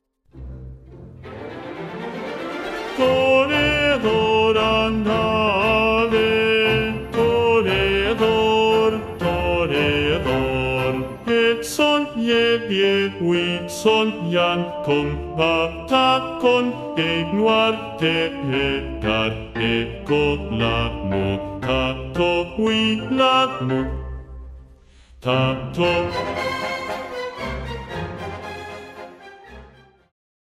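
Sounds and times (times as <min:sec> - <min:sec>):
bass voice singing an opera aria: 0:02.9 - 0:24.5, 0:25.2 - 0:27.6.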